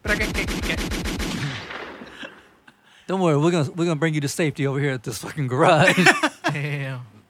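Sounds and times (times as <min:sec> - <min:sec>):
automatic gunfire during filming in Fifth Ward: 0:00.0 - 0:02.6
laughter: 0:02.0 - 0:03.0, 0:05.5 - 0:07.0
speech: 0:03.1 - 0:07.2.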